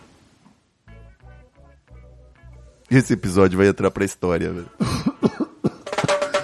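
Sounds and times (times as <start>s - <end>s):
speech: 2.9s - 5.0s
person coughing while laughing and smoking marijuana: 4.8s - 6.4s.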